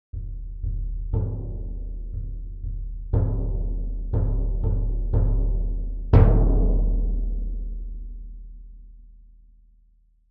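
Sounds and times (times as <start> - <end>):
bass drum: 0.1 - 9.4.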